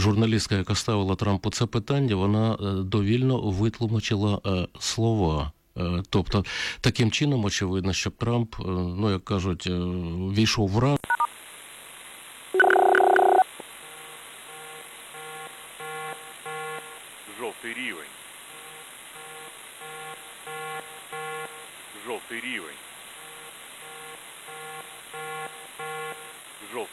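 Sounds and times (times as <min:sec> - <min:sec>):
speech: 0:00.0 - 0:11.1, 0:12.5 - 0:12.7
electronic air raid warning signal: 0:12.6 - 0:17.0, 0:18.5 - 0:21.8, 0:23.2 - 0:26.4.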